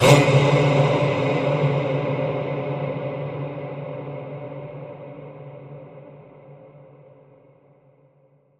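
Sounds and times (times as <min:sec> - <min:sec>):
dark choral vocals: 0:00.0 - 0:06.7.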